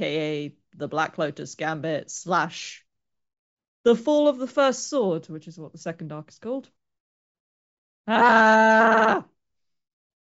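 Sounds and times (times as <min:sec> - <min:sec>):
speech: 0:00.0 - 0:02.8, 0:03.8 - 0:06.8, 0:08.0 - 0:09.3
person screaming: 0:08.1 - 0:09.3.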